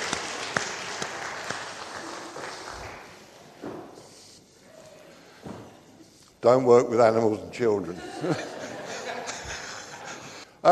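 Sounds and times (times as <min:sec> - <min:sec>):
congregation applauding: 0:00.0 - 0:03.4
speech: 0:06.4 - 0:08.5
laughter: 0:07.9 - 0:10.5.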